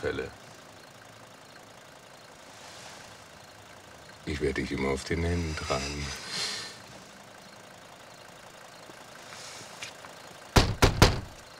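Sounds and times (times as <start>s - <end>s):
speech: 0.0s - 0.4s, 4.2s - 6.6s
car engine idling at night: 0.0s - 11.5s
sharp knocks: 10.6s - 11.4s.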